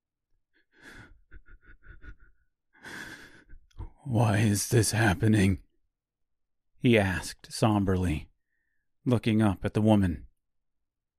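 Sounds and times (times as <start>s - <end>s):
collapsed man panting with short ragged breaths: 0.6s - 3.9s
collapsed man desperately gasping for air: 2.8s - 3.9s
speech: 4.1s - 5.6s, 6.8s - 8.3s, 9.0s - 10.3s.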